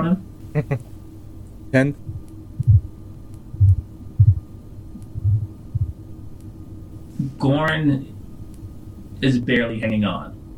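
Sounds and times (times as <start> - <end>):
speech: 0.0 - 0.8, 1.7 - 2.0, 7.5 - 8.1, 9.2 - 10.4
faint hum: 0.0 - 10.5
soft heartbeat: 2.0 - 6.1.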